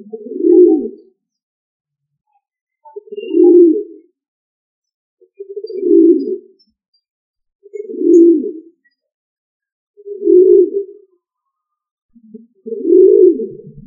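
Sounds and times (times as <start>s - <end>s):
pigeon giving low muffled throaty coos: 0.0s - 1.1s, 2.9s - 4.1s, 5.3s - 6.6s, 7.7s - 8.9s, 10.0s - 11.1s, 12.4s - 13.8s.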